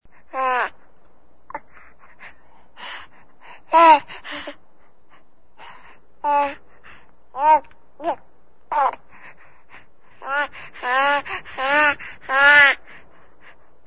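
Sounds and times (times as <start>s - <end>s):
restless baby: 0.1s - 13.8s.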